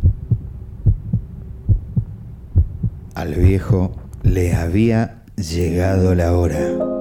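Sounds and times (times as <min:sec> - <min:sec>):
loud deep lub-dub heartbeat: 0:00.0 - 0:03.8
speech: 0:03.2 - 0:06.9.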